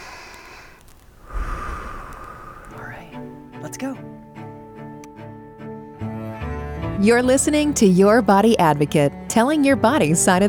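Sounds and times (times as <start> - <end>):
deep breath taken to relax: 0.0 - 3.6
speech: 3.8 - 4.1, 7.0 - 10.4.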